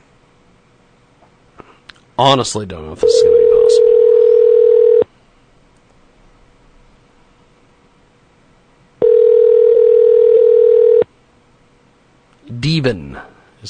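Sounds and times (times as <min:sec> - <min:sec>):
speech: 0:02.2 - 0:03.8
outgoing Skype call electronic ringback tone: 0:03.0 - 0:05.0, 0:09.0 - 0:11.0.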